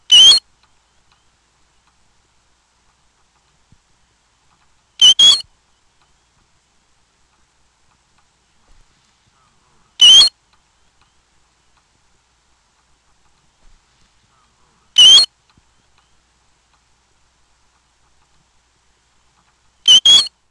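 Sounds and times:
American golden plover calling: 0.0 - 0.4, 5.0 - 5.5, 9.2 - 10.4, 14.2 - 15.3, 19.9 - 20.3.

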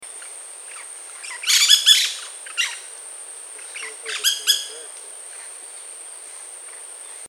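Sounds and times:
painted parakeet: 0.2 - 2.9, 3.6 - 5.6.

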